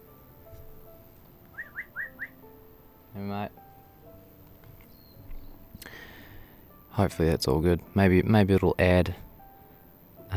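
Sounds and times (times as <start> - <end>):
birds chirping: 1.4 - 2.6, 4.6 - 6.6
speech: 7.0 - 9.2.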